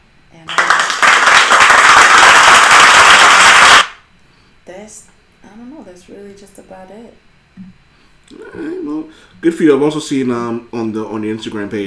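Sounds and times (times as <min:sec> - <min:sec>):
loud crowd applause: 0:00.5 - 0:04.0
speech: 0:06.4 - 0:07.7, 0:08.6 - 0:11.8.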